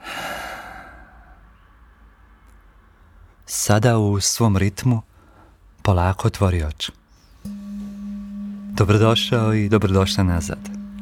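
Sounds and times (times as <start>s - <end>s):
slow deep breathing during a guided relaxation exercise: 0.0s - 1.5s
speech: 3.7s - 5.1s, 5.8s - 7.6s, 8.8s - 10.8s.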